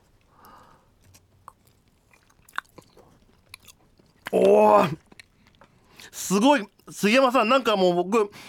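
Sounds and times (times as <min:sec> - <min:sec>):
chewing a spoonful of very thick plain peanut butter: 0:00.2 - 0:06.1
speech: 0:04.3 - 0:05.0, 0:06.3 - 0:08.4.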